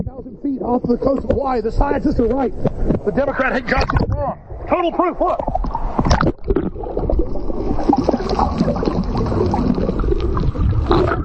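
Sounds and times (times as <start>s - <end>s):
speech: 0.2s - 5.5s
water rushing and splashing against an aluminum boat hull: 2.2s - 11.2s.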